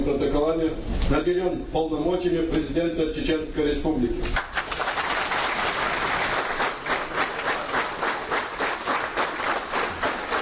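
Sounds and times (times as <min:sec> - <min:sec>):
speech: 0:00.0 - 0:04.6
large crowd applauding in an assembly hall: 0:04.4 - 0:10.4.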